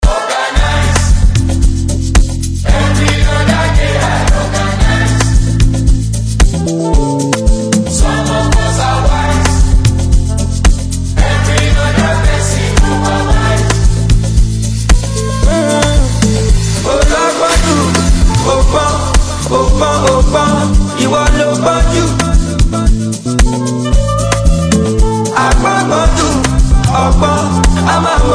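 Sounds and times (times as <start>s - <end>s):
instrumental music hook: 0.0s - 28.3s.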